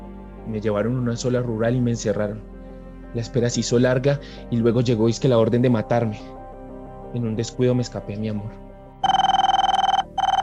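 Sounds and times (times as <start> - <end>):
speech: 0.5 - 2.5, 3.1 - 6.4, 7.1 - 9.2
telephone bell ringing: 9.0 - 10.4.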